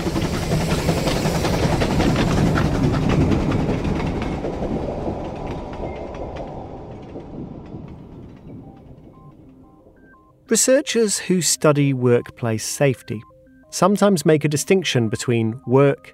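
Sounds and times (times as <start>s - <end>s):
troop train wheels clacking over rail joints: 0.0s - 10.0s
troop train roaring past on tracks: 0.0s - 10.6s
speech: 10.5s - 16.1s.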